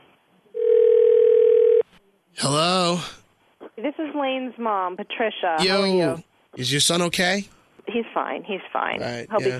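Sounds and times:
telephone dial tone before a three-way call: 0.6s - 1.8s
speech: 3.9s - 9.5s.

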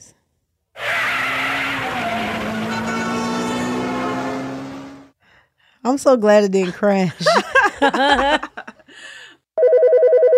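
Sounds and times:
car tires screeching: 0.8s - 5.1s
speech: 5.9s - 8.5s
laughter: 7.1s - 8.9s.

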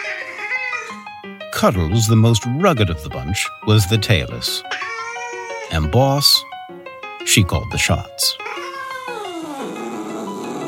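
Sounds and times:
speech: 1.6s - 4.8s, 5.7s - 6.5s, 7.2s - 8.6s
cat meowing: 4.7s - 5.8s, 8.4s - 10.6s.

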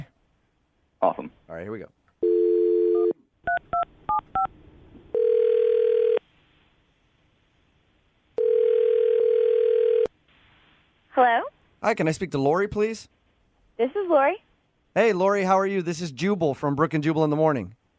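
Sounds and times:
speech: 1.0s - 2.0s, 11.2s - 13.2s, 13.8s - 14.4s, 15.0s - 17.8s
phone line dial tone: 2.2s - 3.6s, 5.1s - 6.2s, 8.4s - 10.1s.

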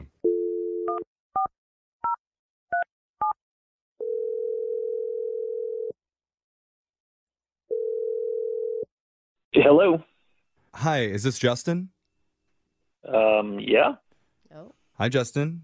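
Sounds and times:
telephone dial tone: 0.2s - 1.0s, 4.0s - 6.0s, 7.7s - 8.9s
speech: 9.6s - 10.1s, 10.8s - 12.0s, 13.0s - 15.6s.

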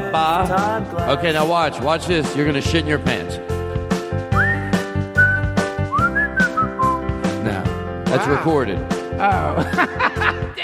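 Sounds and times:
busy rhythmic musical backing with repeated beats: 0.0s - 10.6s
speech: 0.1s - 3.5s, 8.1s - 10.3s
person whistling a short melodic phrase: 4.3s - 7.1s
laughter: 8.1s - 10.6s.

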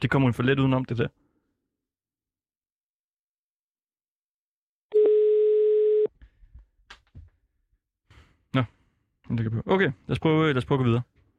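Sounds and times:
speech: 0.0s - 1.2s, 8.5s - 11.2s
telephone dial tone as a call is placed again: 4.9s - 6.1s.

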